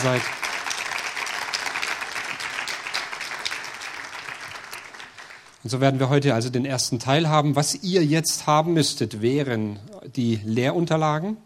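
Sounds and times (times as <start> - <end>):
speech: 0.0 - 0.4, 5.6 - 11.4
audience applause: 0.0 - 5.6.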